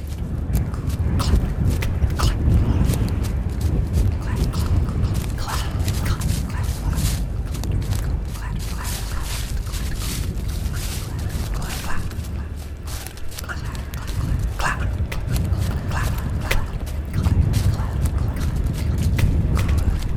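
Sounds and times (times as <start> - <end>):
sharp snaps of breaking branches: 0.0 - 20.1
boots crunching through stiff dry leaves: 1.0 - 20.1.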